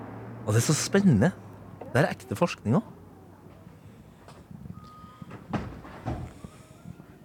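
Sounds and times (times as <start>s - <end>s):
speech: 0.5s - 3.0s
sliding door opening with soft rumbling thumps: 5.3s - 6.4s.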